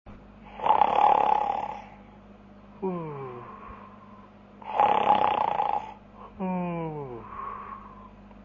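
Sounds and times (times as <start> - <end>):
snoring: 0.5 - 2.0, 4.6 - 7.4.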